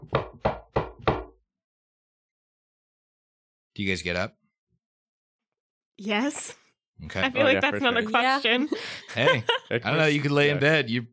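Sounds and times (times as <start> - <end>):
firm knocking on a door: 0.0 - 1.4
speech: 3.8 - 4.4, 6.0 - 11.1
laughter: 7.2 - 10.8.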